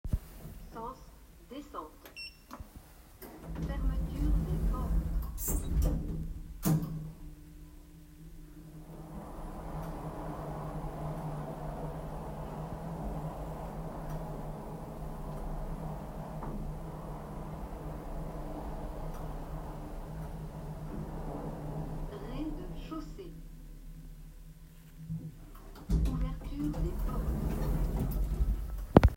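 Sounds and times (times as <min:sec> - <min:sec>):
elevator: 0:03.1 - 0:29.1.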